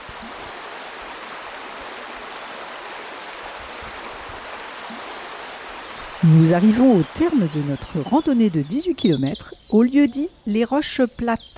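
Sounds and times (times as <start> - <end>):
river water flowing over stones: 0.0 - 8.3
speech: 6.2 - 11.5.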